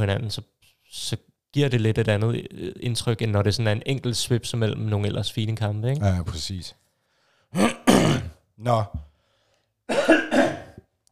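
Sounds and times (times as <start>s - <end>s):
speech: 0.0s - 6.8s, 7.5s - 7.8s, 8.6s - 9.1s, 9.9s - 10.2s
person coughing: 7.6s - 8.4s, 9.9s - 10.8s.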